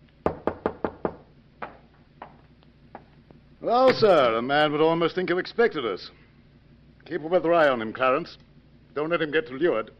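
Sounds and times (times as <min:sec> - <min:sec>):
firm knocking on a door: 0:00.2 - 0:02.4
speech: 0:03.6 - 0:06.2, 0:07.1 - 0:08.4, 0:09.0 - 0:09.9.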